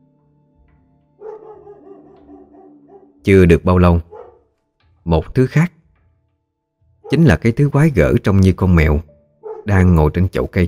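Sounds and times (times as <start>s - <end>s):
dog giving a warning bark: 1.2s - 3.2s, 4.0s - 4.5s, 7.0s - 7.4s, 9.4s - 9.8s
speech: 3.2s - 4.1s, 5.0s - 5.8s, 7.1s - 10.6s.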